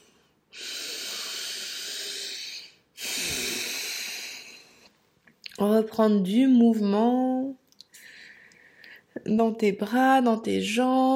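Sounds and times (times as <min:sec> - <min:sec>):
deep slow breaths during a guided meditation: 0:00.0 - 0:05.0, 0:07.9 - 0:09.1
speech: 0:05.6 - 0:07.6, 0:09.3 - 0:11.1.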